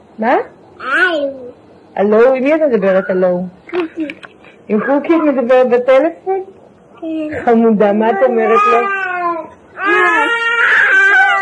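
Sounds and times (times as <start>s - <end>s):
speech: 0.2s - 9.1s
young boy crying: 8.1s - 11.3s.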